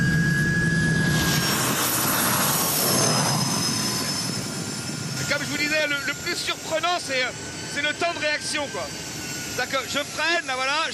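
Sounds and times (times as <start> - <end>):
turbine engine running hot at about 800 degrees turbine temperature: 0.0 - 10.9
speech: 6.8 - 10.9.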